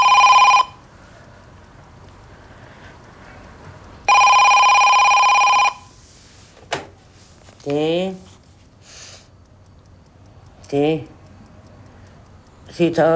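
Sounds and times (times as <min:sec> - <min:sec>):
telephone ringing in electronic bursts: 0:00.0 - 0:00.8, 0:04.1 - 0:06.0
speech: 0:10.7 - 0:11.1, 0:12.8 - 0:13.1.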